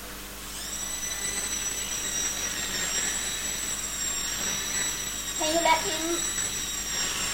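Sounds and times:
toy airplane high steady electric whine: 0.0s - 7.3s
speech: 5.5s - 6.4s.

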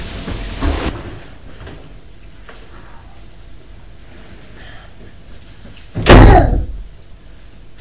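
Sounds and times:
door slamming shut with a loud bang: 6.0s - 6.8s.

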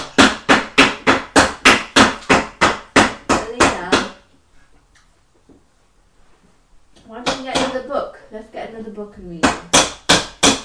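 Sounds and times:
hammer striking a chair to fix it: 0.0s - 4.2s, 9.4s - 10.6s
speech: 8.8s - 9.7s.

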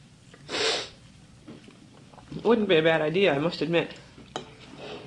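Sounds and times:
nose blowing into a tissue: 0.5s - 1.0s
speech: 2.4s - 4.0s.

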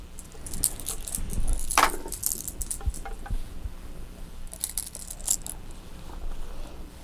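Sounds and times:
low hum: 0.0s - 7.0s
bunch of keys jangling: 0.2s - 3.0s, 4.5s - 5.6s.

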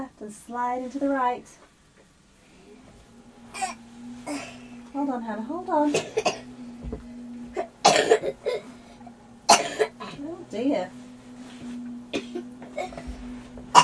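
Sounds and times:
speech: 0.2s - 1.7s, 3.5s - 7.0s, 8.2s - 8.7s, 10.5s - 11.0s
low hum: 2.0s - 13.8s
child coughing: 5.9s - 6.5s, 7.8s - 8.6s, 9.5s - 10.2s, 12.1s - 13.0s.

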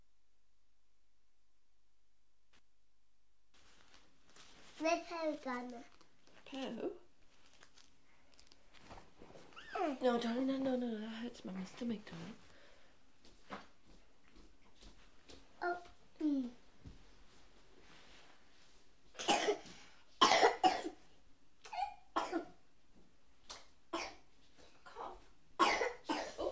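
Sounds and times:
speech: 4.8s - 7.0s, 9.8s - 12.4s
small child coughing: 19.2s - 21.0s, 21.7s - 22.6s, 24.0s - 24.2s, 25.6s - 26.5s.

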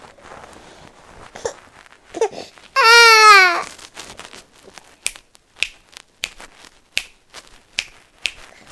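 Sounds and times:
baby crying while fussing with a sore ear: 2.2s - 3.7s
sharp clicks and taps: 5.0s - 8.7s.

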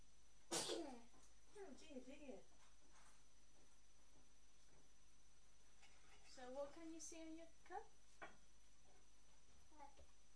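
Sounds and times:
person sneezing: 0.5s - 1.0s
speech: 0.9s - 2.6s, 6.7s - 8.0s.

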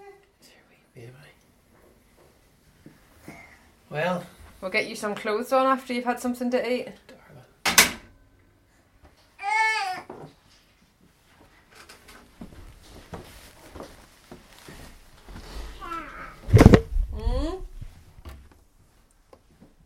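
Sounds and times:
soft faint rustling and handling noises: 0.0s - 7.6s, 8.6s - 19.8s
speech: 3.9s - 7.0s
baby babbling: 9.4s - 10.1s, 15.8s - 16.5s.

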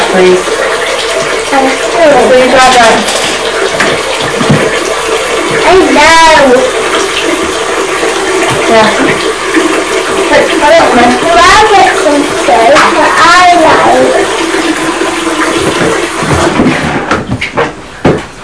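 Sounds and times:
hands washing in warm sink water: 0.0s - 18.4s
speech: 0.2s - 0.5s, 1.5s - 3.2s, 5.6s - 7.4s, 8.7s - 9.5s, 10.3s - 15.1s.

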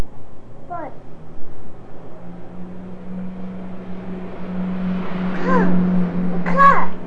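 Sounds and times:
car engine passing by: 0.4s - 7.0s
child calling out: 0.7s - 1.0s, 5.4s - 5.8s, 6.5s - 7.0s.

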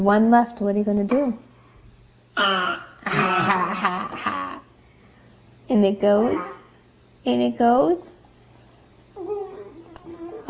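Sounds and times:
speech: 0.0s - 1.5s, 2.4s - 4.2s, 5.7s - 6.6s, 7.2s - 8.1s
person coughing: 2.4s - 3.8s.

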